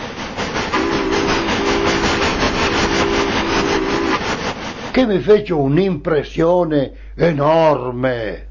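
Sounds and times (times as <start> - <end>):
steam locomotive puffing: 0.0 - 5.4
low steady hum: 0.7 - 8.5
speech: 5.0 - 8.5.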